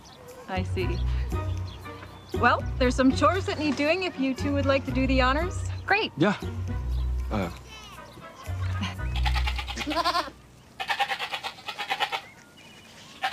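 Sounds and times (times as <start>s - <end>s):
speech: 0.5s - 1.6s, 2.3s - 6.7s, 7.3s - 7.6s, 9.8s - 10.3s
goats bleating while being fed: 8.8s - 12.4s, 13.0s - 13.3s.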